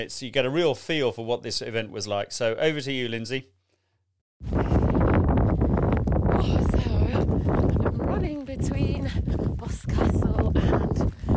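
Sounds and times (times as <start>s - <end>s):
speech: 0.0s - 3.6s
strong wind buffeting the microphone on a coastal path at night: 4.4s - 11.3s.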